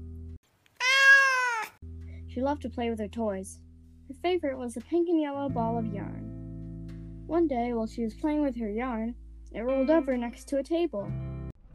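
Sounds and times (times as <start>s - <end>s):
kitten meowing: 0.8s - 1.7s
speech: 2.4s - 6.2s, 7.3s - 11.3s.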